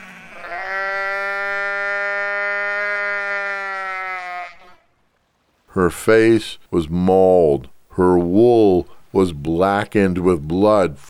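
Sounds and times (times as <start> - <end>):
injured sheep with hind legs jammed between rock ledges bleating: 0.0 - 4.9
speech: 5.8 - 11.0.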